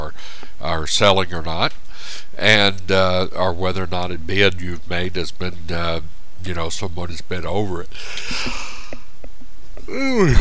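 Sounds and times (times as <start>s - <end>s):
faint breaths: 0.1s - 0.6s, 1.8s - 2.4s, 7.9s - 9.1s
speech: 0.8s - 1.8s, 2.4s - 8.7s, 9.9s - 10.3s
mouth noises: 9.8s - 10.3s
person yawning: 9.9s - 10.3s.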